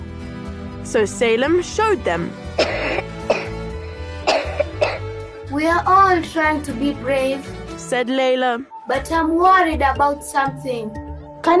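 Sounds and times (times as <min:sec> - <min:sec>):
speech: 0:00.8 - 0:02.4, 0:05.6 - 0:11.5
person coughing into their elbow: 0:02.6 - 0:05.0.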